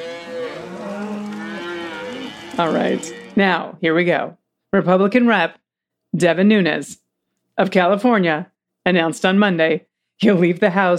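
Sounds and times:
herd of cows mooing: 0.0s - 3.4s
speech: 2.6s - 7.0s, 7.6s - 10.9s.

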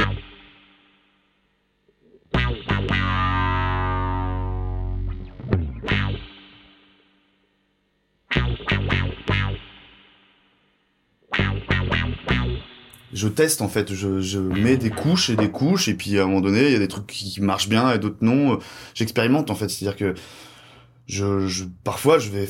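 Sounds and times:
fuzzy distorted electric guitar with a little reverb: 0.0s - 0.7s, 2.0s - 7.0s, 8.3s - 10.0s, 11.2s - 15.7s
speech: 13.2s - 20.5s, 21.1s - 22.4s.

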